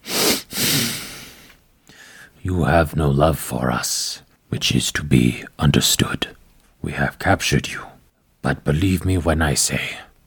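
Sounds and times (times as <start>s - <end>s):
woman sniffing: 0.0s - 1.6s
speech: 2.4s - 10.1s.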